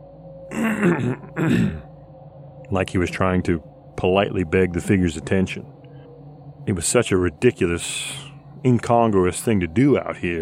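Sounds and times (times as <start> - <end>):
speech: 0.5 - 1.8, 2.7 - 5.7, 6.6 - 10.4
person quietly clearing throat: 0.5 - 1.9.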